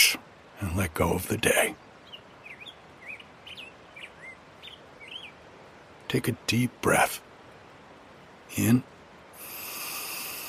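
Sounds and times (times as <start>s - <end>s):
soft steady background hiss: 0.0s - 10.4s
speech: 0.6s - 1.9s, 6.1s - 7.3s, 8.5s - 8.9s
male Black-headed Grosbeak singing by a creek in spring: 1.0s - 5.5s.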